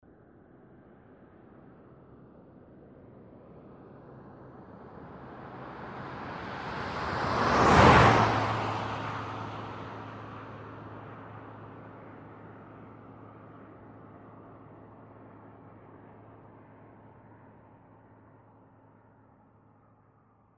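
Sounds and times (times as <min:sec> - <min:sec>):
car passing: 0:05.1 - 0:11.9.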